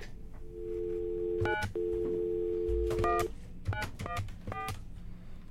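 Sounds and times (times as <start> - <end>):
telephone dial tone: 0.4 - 3.3
cheap phone keypad beeps: 0.5 - 4.7.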